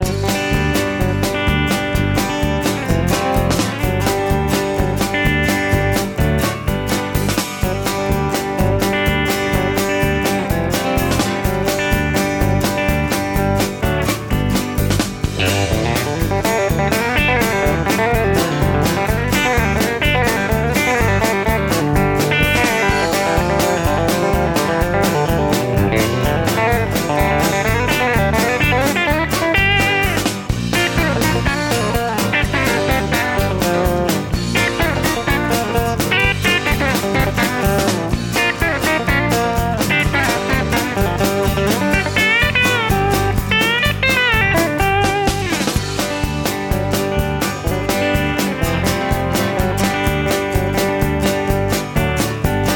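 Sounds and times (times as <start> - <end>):
full guitar picking: 0.0 - 52.7.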